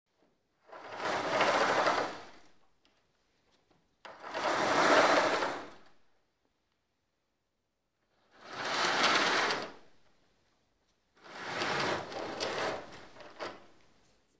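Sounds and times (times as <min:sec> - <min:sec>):
curtains on heavy metal rods: 0:00.1 - 0:06.0, 0:08.2 - 0:14.3.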